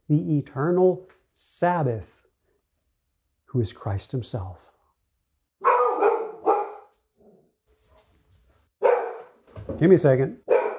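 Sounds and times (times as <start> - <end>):
speech: 0.1 - 2.2, 3.5 - 4.7, 9.8 - 10.5
dog barking at something outside: 5.6 - 7.4, 8.8 - 9.4, 10.4 - 10.7.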